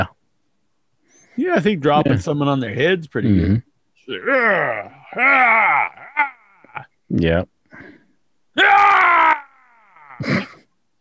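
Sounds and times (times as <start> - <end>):
speech: 1.4 - 7.9, 10.2 - 10.5
person letting out a raw primal rage scream: 4.1 - 6.9, 8.6 - 10.6.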